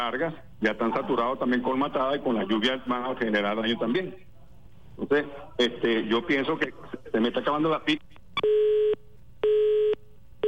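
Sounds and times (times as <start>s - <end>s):
speech: 0.0s - 4.3s, 5.0s - 8.8s
telephone busy tone after a dropped call: 8.4s - 10.4s.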